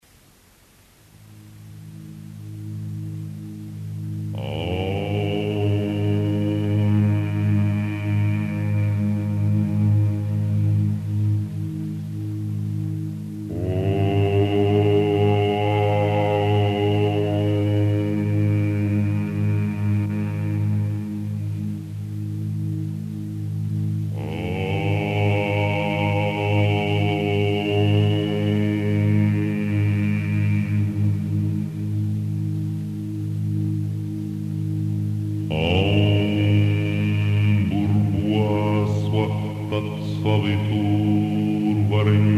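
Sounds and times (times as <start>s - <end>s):
mantra chanting: 1.4s - 42.3s.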